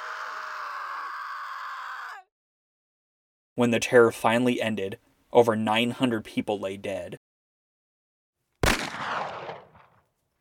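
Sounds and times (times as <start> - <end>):
speech: 3.6 - 7.2
single loud gunshot with reverberating echo: 8.6 - 10.0.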